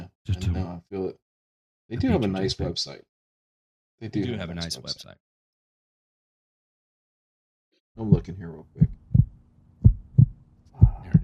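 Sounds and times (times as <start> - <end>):
speech: 0.3 - 1.2, 1.9 - 3.1, 4.0 - 5.2, 8.0 - 9.0
deep heartbeat sound effect thumping: 8.0 - 11.2.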